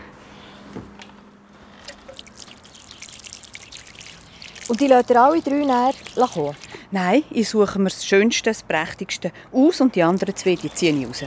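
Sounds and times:
water poured onto soil with freshly planted seeds: 1.8s - 6.8s, 10.0s - 11.2s
speech: 4.7s - 11.2s.

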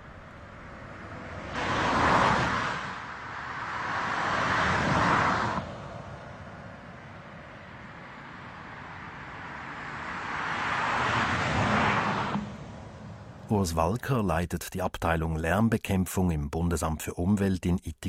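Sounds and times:
car tyre roar driving from low-noise onto normal pavement: 0.0s - 13.5s
vehicle passing with a rushing noise: 0.0s - 13.6s
speech: 13.6s - 18.0s.

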